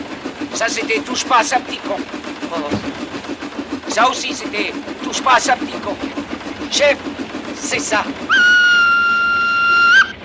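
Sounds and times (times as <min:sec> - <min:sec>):
speech: 0:00.6 - 0:03.0, 0:03.9 - 0:08.3
locomotive whistle blast: 0:08.3 - 0:10.2.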